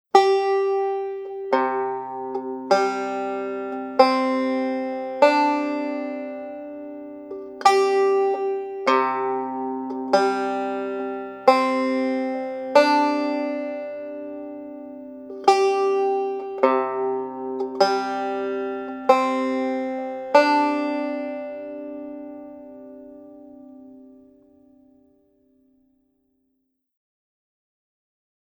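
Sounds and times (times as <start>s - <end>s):
strings in Double C tuning gCGCD: 0.2s - 24.4s.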